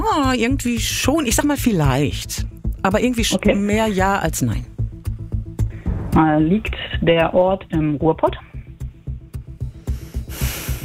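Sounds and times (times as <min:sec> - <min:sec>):
speech: 0:00.2 - 0:04.7, 0:06.1 - 0:08.5
heavy breathing in quick rhythmic pulses: 0:09.7 - 0:10.8.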